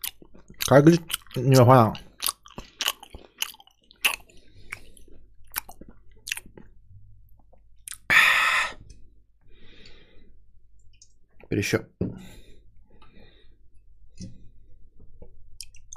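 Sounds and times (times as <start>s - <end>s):
loud chewing and crunching: 0.0s - 6.8s
speech: 0.7s - 2.0s, 11.5s - 12.4s.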